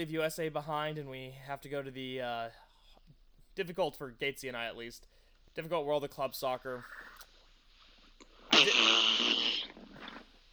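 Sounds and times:
speech: 0.0 - 2.6, 3.6 - 7.0
buzzy raspberry blown with the mouth imitating a fart: 8.2 - 10.4.

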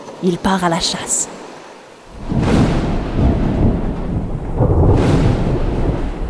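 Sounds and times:
speech: 0.2 - 1.4
steady rain: 2.0 - 6.2
deep rolling thunder in a midday thunderstorm: 2.1 - 6.2.

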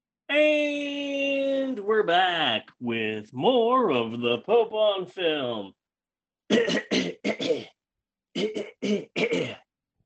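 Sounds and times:
speech: 0.3 - 0.8, 1.8 - 5.8, 6.5 - 7.8, 8.4 - 9.6
throat clearing mimicking a pounding musical rhythm: 6.5 - 7.8, 8.4 - 9.7.

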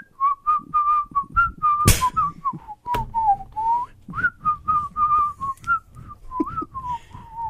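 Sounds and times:
person whistling a bouncy pop melody: 0.0 - 7.4
sharp noise bursts: 1.8 - 2.4.

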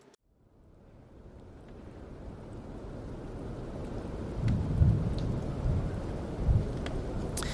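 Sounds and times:
steady rain hissing: 0.0 - 7.5
low thunder rumbling: 1.5 - 7.5.

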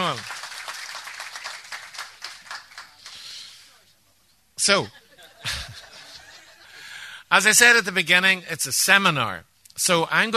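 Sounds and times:
seminar audience applauding a speaker: 0.0 - 3.3
speech: 4.6 - 5.6, 7.3 - 10.3
laughter: 4.8 - 7.0.

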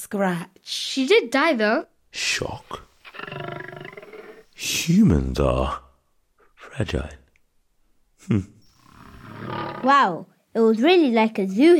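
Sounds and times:
speech: 0.0 - 3.5, 4.6 - 5.8, 6.8 - 7.2, 8.2 - 8.6, 9.4 - 11.7
Barbary lion roaring: 3.0 - 4.5, 8.8 - 10.0.

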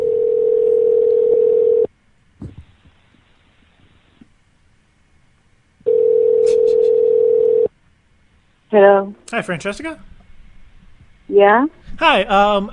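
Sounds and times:
telephone ringback tone over the line: 0.0 - 1.9, 5.9 - 7.7
speech: 8.7 - 10.1, 11.3 - 12.7.

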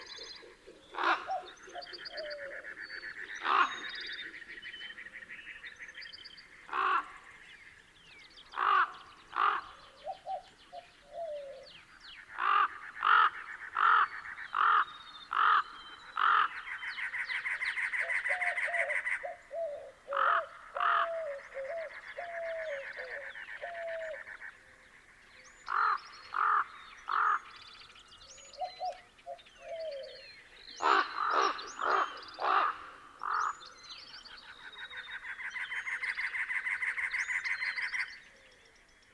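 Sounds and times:
common ravens croaking: 0.0 - 3.9, 6.6 - 7.5, 8.5 - 10.4, 12.3 - 27.6, 30.8 - 33.7
cooing and birdsong: 0.0 - 39.1.

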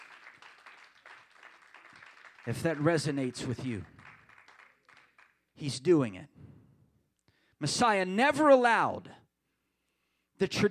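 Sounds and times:
audience clapping hands: 0.0 - 5.4
speech: 2.4 - 4.0, 5.6 - 6.4, 7.6 - 9.2, 10.4 - 10.6.

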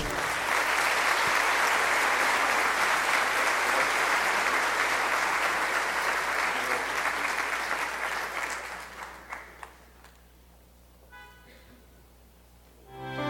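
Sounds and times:
crowd applauding: 0.0 - 10.2.

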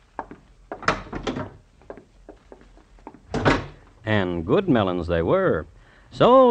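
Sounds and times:
door being opened with wooden knocks, rattles and thunks: 0.2 - 1.6, 3.1 - 3.8
speech: 4.1 - 6.5.

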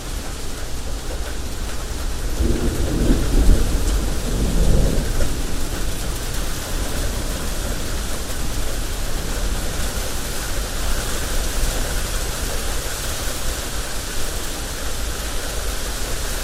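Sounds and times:
steady rain: 0.0 - 16.4
soft low roll of thunder: 2.0 - 11.6.

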